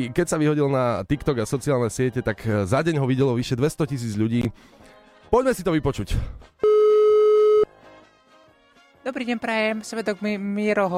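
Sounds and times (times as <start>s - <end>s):
speech: 0.0s - 6.7s, 9.0s - 10.9s
telephone line tone before a call on New Year's Eve: 6.6s - 7.7s.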